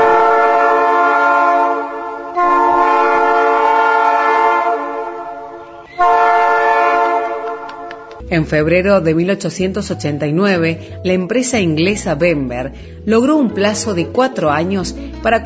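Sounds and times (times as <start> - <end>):
train horn on a historic rail line through the Córdoba hills, Argentina: 0.0 - 8.2
speech: 8.3 - 15.4.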